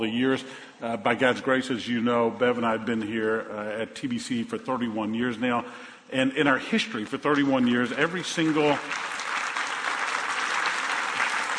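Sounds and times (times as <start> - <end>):
speech: 0.0 - 9.1
audience applauding in a church: 8.2 - 11.5.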